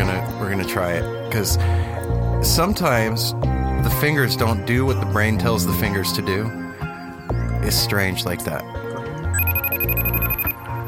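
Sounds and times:
speech: 0:00.5 - 0:06.6, 0:07.6 - 0:08.7
electronic phone ringtone trilling: 0:09.3 - 0:10.8.

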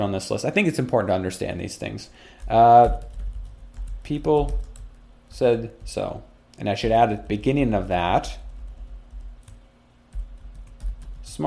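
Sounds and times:
speech: 0:00.0 - 0:03.1, 0:04.1 - 0:04.7, 0:05.3 - 0:08.4, 0:11.3 - 0:11.4
typing on a computer keyboard: 0:02.4 - 0:05.0, 0:08.2 - 0:11.4.

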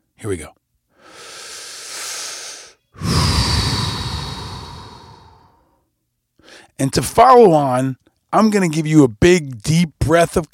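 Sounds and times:
speech: 0:00.2 - 0:00.6, 0:06.8 - 0:10.5
deep breath in and out: 0:00.9 - 0:05.8, 0:06.4 - 0:06.7.

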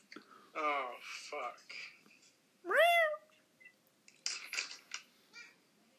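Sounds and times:
speech: 0:00.6 - 0:02.0
soft rustling and clattering: 0:00.9 - 0:02.5, 0:04.1 - 0:05.4
cat meowing: 0:02.7 - 0:03.3.

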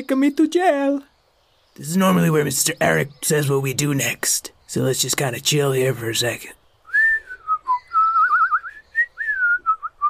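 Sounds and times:
speech: 0:00.0 - 0:01.1, 0:01.8 - 0:06.6
person whistling a lively wavering tune: 0:06.9 - 0:10.0.

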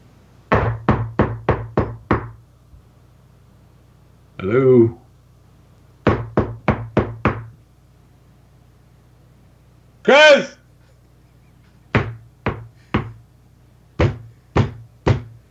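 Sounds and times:
faint low hum: 0:00.0 - 0:15.4
knocking on a door: 0:00.5 - 0:02.4, 0:06.0 - 0:07.6, 0:11.9 - 0:13.2, 0:14.0 - 0:15.4
speech: 0:04.4 - 0:05.0.

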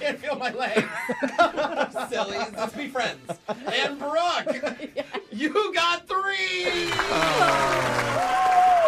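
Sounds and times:
laughter: 0:00.0 - 0:05.6, 0:06.7 - 0:08.2
speech: 0:00.1 - 0:01.4
scattered applause: 0:06.6 - 0:08.8
woman contestant's excited cheer with whoops: 0:06.6 - 0:08.8.

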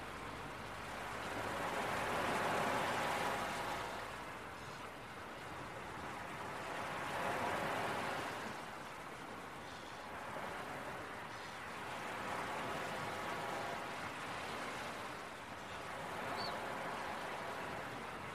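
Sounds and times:
relaxing beach waves in the early morning: 0:00.0 - 0:18.3
seagulls in the early morning: 0:16.2 - 0:16.7.

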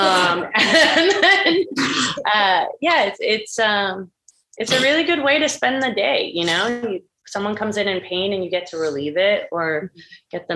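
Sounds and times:
laughter: 0:00.0 - 0:01.8
speech: 0:01.6 - 0:10.5
dog coughing and hacking: 0:01.8 - 0:02.2, 0:04.7 - 0:05.0.

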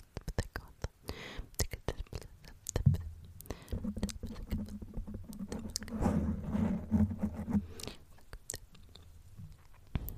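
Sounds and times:
soft unintelligible whispering: 0:00.0 - 0:06.3, 0:07.7 - 0:09.1
low steady hum: 0:00.0 - 0:10.1.

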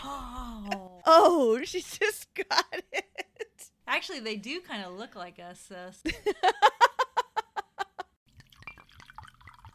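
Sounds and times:
speech: 0:01.1 - 0:02.7, 0:04.0 - 0:06.7
wine glugging from a bottle into a glass: 0:08.3 - 0:09.7.

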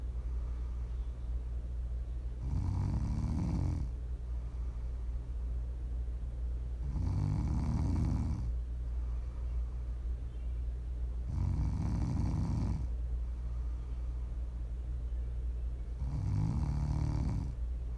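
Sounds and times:
steady low hum: 0:00.0 - 0:17.9
slow regular deep snoring: 0:02.4 - 0:03.9, 0:06.8 - 0:08.5, 0:11.3 - 0:12.9, 0:16.0 - 0:17.6.

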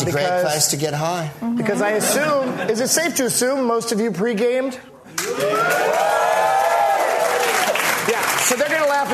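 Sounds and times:
speech: 0:00.0 - 0:06.2, 0:08.5 - 0:09.1
live show crowd in Sydney Australia cheering and whooping: 0:05.3 - 0:07.9.

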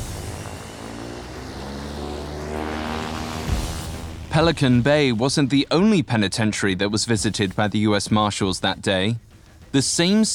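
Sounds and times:
small private propeller plane engine droning at a landing strip: 0:00.0 - 0:05.6
speech: 0:04.4 - 0:10.3.

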